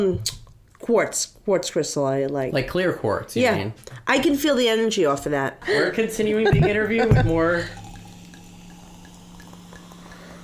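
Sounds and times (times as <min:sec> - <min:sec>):
speech: 0:00.0 - 0:07.8
laughter: 0:06.2 - 0:07.3
drips: 0:06.6 - 0:10.4
bubbly drink being poured: 0:07.1 - 0:10.4.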